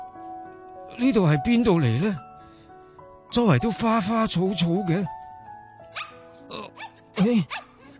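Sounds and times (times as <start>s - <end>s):
speech: 1.0s - 2.3s, 3.3s - 5.2s, 7.3s - 7.7s
small dog barking: 5.9s - 6.2s, 6.8s - 7.8s.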